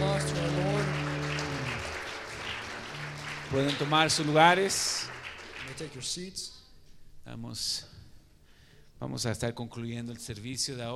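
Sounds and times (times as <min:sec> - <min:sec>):
audience applause: 0:00.0 - 0:06.1
speech: 0:03.5 - 0:06.6, 0:07.2 - 0:07.9, 0:09.0 - 0:10.9.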